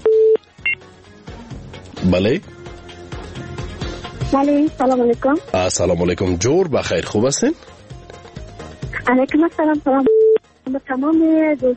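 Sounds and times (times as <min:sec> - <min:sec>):
telephone dialing beeps as a phone line connects a caller: 0:00.0 - 0:00.8, 0:10.0 - 0:10.4
speech: 0:02.0 - 0:02.6, 0:04.3 - 0:07.7, 0:09.1 - 0:10.1, 0:10.7 - 0:11.7.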